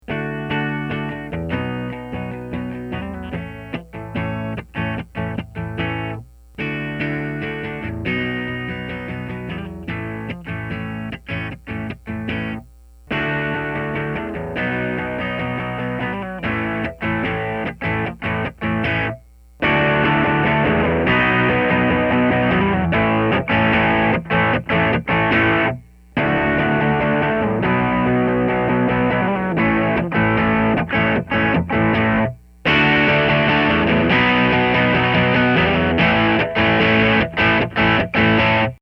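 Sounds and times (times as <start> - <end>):
electric guitar through overdrive pedal into bass amplifier: 0.0 - 38.7.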